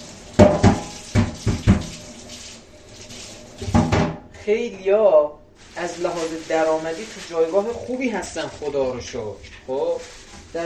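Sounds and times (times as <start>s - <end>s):
water from a tap splashing into a sink: 0.0s - 4.3s
speech: 4.5s - 10.6s.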